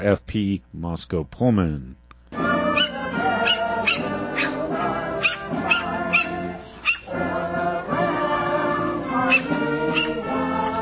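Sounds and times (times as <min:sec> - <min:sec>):
speech: 0:00.0 - 0:02.0
patriotic songs playing outdoors at a Fourth of July event in Moscow: 0:02.3 - 0:10.7
dogs barking outdoors: 0:02.6 - 0:07.4, 0:09.1 - 0:10.5.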